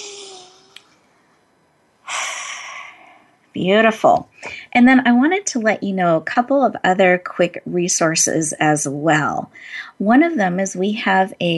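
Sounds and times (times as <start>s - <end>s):
loud airy deep breath drawn in: 2.1s - 3.3s
speech: 3.6s - 11.5s.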